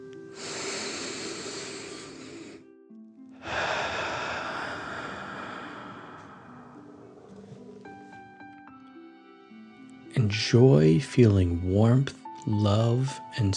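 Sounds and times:
soft sustained music tones: 0.0 - 13.5
deep dragon breath in and out during a guided exercise: 0.3 - 2.6, 3.4 - 7.6
speech: 10.2 - 13.5.

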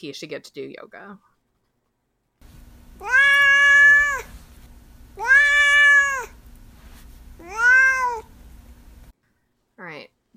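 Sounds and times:
speech: 0.0 - 1.3, 9.8 - 10.2
domestic cat meowing: 3.0 - 4.3, 5.2 - 6.4, 7.4 - 8.3.

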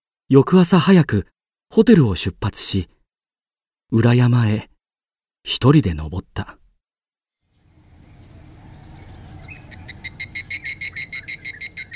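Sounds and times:
speech: 0.3 - 3.0, 3.9 - 4.7, 5.4 - 6.6
high-pitched insect buzzing on a summer mountain path: 7.4 - 11.9
loud pulsing cicada chirps: 7.9 - 11.9.

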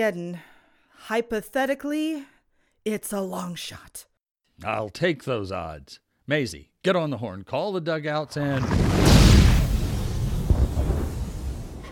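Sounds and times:
speech: 0.0 - 9.1
huge explosion in a town: 8.6 - 11.8.

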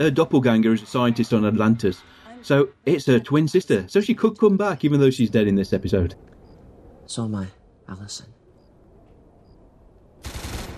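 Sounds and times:
speech: 0.0 - 6.3, 7.1 - 8.4
sustained volley of gunfire: 10.2 - 10.7.

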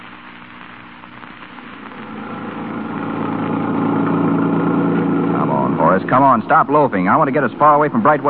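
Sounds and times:
car engine running: 2.0 - 8.2
speech: 6.1 - 8.2.

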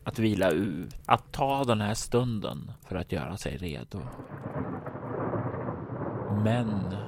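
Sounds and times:
speech: 0.1 - 4.5, 6.4 - 7.0
deep rolling thunder: 4.1 - 7.0
heavy rain pouring: 4.2 - 7.0.

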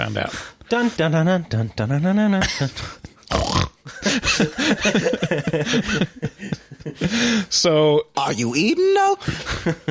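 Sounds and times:
speech: 0.0 - 9.8
voice imitating pig oinking and snorting: 2.6 - 3.8
laughter: 3.9 - 7.4, 9.2 - 9.8.

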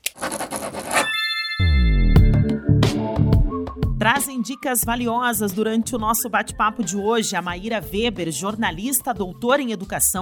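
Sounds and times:
pen scratching across paper: 0.0 - 1.1
music: 1.6 - 10.2
speech: 4.0 - 10.2.

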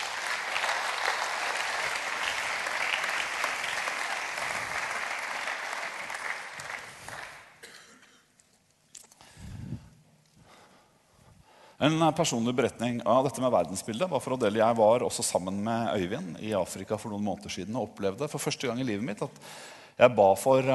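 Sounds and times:
sizable crowd applauding: 0.0 - 7.6
speech: 11.8 - 20.7.

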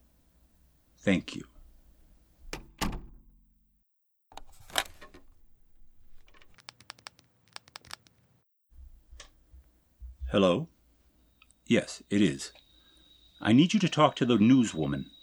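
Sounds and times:
speech: 1.0 - 1.5, 10.4 - 10.7, 11.7 - 12.6, 13.4 - 15.2
door pushed shut with solid thuds: 2.4 - 3.4
door latch and handle clicks: 2.5 - 3.2.

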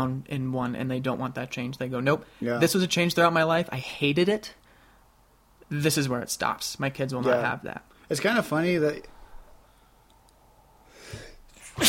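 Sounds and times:
speech: 0.0 - 4.6, 5.7 - 9.1
person sneezing: 11.1 - 11.8.

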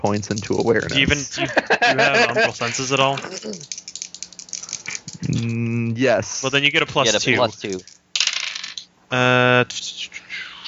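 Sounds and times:
speech: 0.0 - 3.9, 5.3 - 7.9, 9.1 - 10.0
dice rolled and rattling: 0.2 - 1.2, 2.7 - 5.4, 7.1 - 8.9
laughter: 1.0 - 3.7.

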